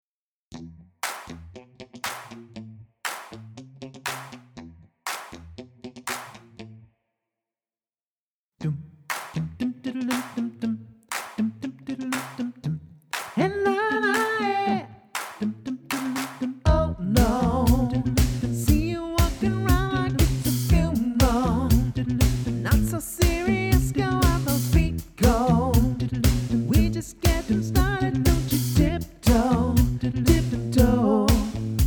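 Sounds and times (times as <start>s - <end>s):
vocal mix: 8.6s - 31.8s.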